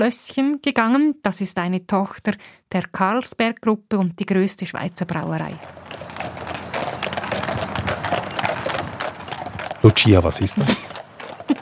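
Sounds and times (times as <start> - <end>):
speech: 0.0 - 5.8, 9.8 - 11.6
horse hooves clip-clopping on pavement pulling a beer wagon: 5.0 - 11.6
wheeled beer wagon rumbling and creaking: 5.0 - 11.6.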